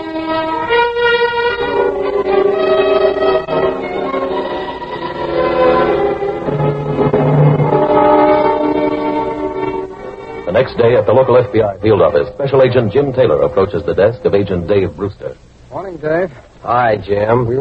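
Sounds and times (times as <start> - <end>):
train horn blaring in long sustained chords: 0.0 - 12.0
speech: 10.8 - 17.5.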